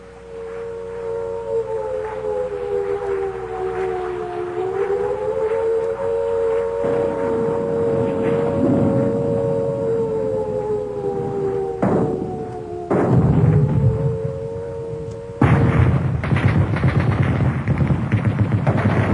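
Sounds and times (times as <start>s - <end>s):
air raid siren wailing: 0.0s - 19.1s
low noisy rumble: 0.0s - 19.1s
heavy booming explosions like mortar and artillery: 3.4s - 19.1s
dense gunfire: 12.9s - 13.7s, 15.4s - 19.1s.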